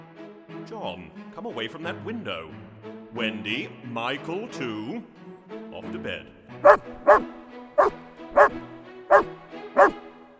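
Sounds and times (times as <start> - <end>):
speech: 0.7 - 8.7
dog barking: 6.6 - 10.0.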